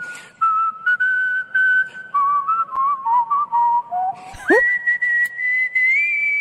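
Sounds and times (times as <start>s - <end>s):
person whistling a tune: 0.0s - 6.3s.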